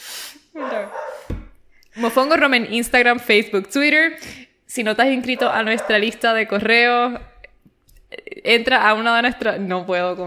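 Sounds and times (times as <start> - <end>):
female dog barking: 0.6 - 1.8, 5.3 - 6.4
thump: 1.3 - 1.7
speech: 2.0 - 7.3, 8.4 - 10.2.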